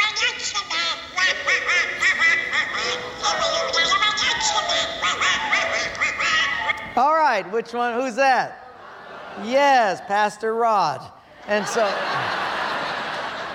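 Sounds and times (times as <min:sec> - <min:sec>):
raspy garbled cartoon duck voice quacking: 0:00.0 - 0:07.0
laughter: 0:01.3 - 0:06.7, 0:08.6 - 0:10.5, 0:11.4 - 0:13.5
speech: 0:07.0 - 0:08.6, 0:09.4 - 0:12.4.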